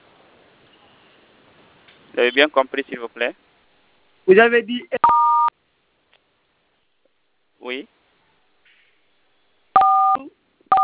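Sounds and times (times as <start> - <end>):
speech: 2.2 - 3.4, 4.3 - 5.1
telephone keypad dual-pitch beeps: 9.8 - 10.8.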